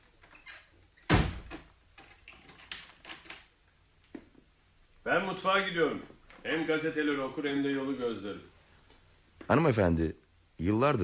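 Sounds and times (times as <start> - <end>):
door shutting with a thud: 1.1 - 1.7
speech: 5.0 - 8.5, 9.5 - 11.0.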